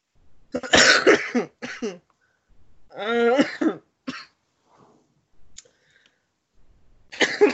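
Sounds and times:
person coughing loudly in harsh fits: 0.5 - 2.0, 3.0 - 4.3, 7.1 - 7.5.

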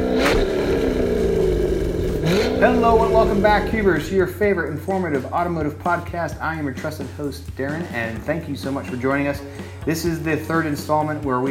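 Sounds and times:
hissing burst: 0.0 - 4.3
car engine revving: 0.0 - 4.8, 7.7 - 10.7
speech: 2.6 - 11.5.

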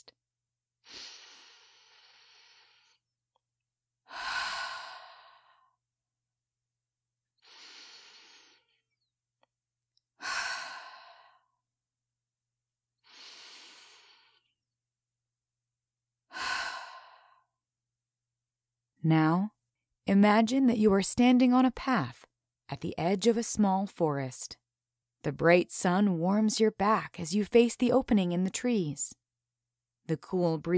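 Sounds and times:
person taking long deep breaths during a guided relaxation: 0.8 - 3.0, 4.1 - 5.8, 7.4 - 8.8, 10.2 - 11.6, 13.0 - 14.5, 16.3 - 17.6
speech: 19.0 - 24.6, 25.2 - 29.2, 30.1 - 30.7.

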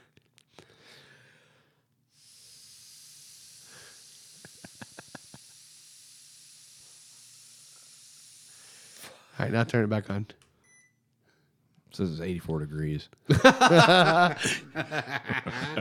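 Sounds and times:
breath blown hard into a switched-off breathalyzer to clear its sensor: 2.1 - 9.4
speech: 9.4 - 10.4, 12.0 - 15.7
laughter: 13.3 - 15.7.

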